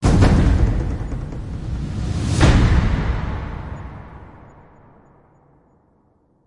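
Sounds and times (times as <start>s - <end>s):
big impact hit with roll: 0.0s - 4.6s.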